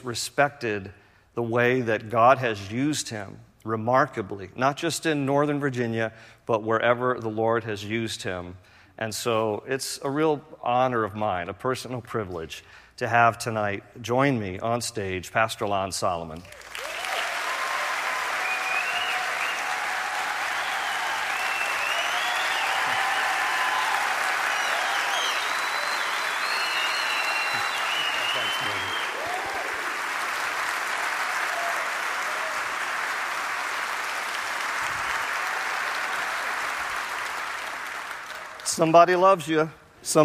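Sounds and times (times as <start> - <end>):
speech: 0.0 - 17.0, 38.8 - 40.2
large audience applause: 16.5 - 38.7
scattered audience cheers: 16.6 - 30.2, 31.1 - 33.0.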